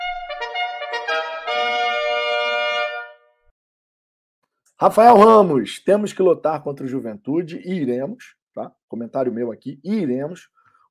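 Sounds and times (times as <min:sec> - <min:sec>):
loud brassy horn sound effect: 0:00.0 - 0:03.3
speech: 0:04.8 - 0:10.6.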